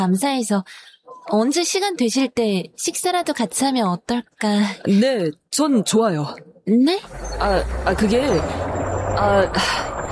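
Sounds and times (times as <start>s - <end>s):
speech: 0.0s - 9.9s
bus engine rumbling: 7.0s - 10.1s.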